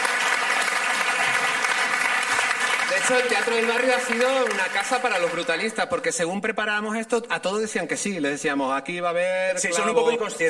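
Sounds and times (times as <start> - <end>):
audience applause for a theatre company receiving a national theatre award: 0.0 - 6.0
speech: 3.0 - 10.4.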